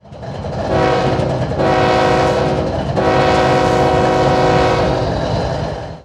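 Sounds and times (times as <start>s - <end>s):
five-chime train horn: 0.6s - 5.4s.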